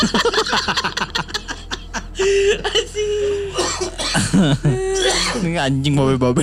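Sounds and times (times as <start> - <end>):
laughter: 0.0 - 5.0
coughing fit: 2.6 - 5.6
speech: 4.4 - 4.8, 5.4 - 6.4.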